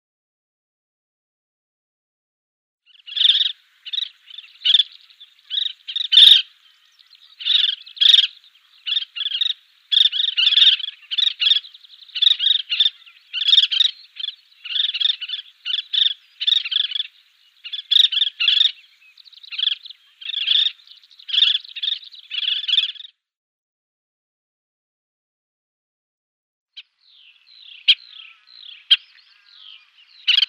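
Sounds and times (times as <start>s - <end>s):
collared pratincole chattering calls: 2.9s - 23.1s, 26.8s - 30.4s.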